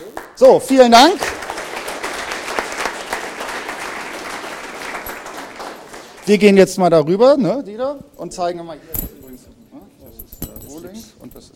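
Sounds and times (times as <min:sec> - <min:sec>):
speech: 0:00.4 - 0:01.3, 0:06.3 - 0:09.0
metal keys and key blank clinking and jangling: 0:05.0 - 0:05.5, 0:07.9 - 0:11.5.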